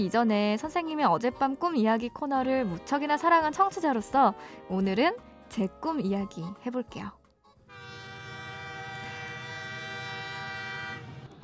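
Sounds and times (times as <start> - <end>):
speech: 0.0 - 7.2
train rumbling along: 7.9 - 11.4.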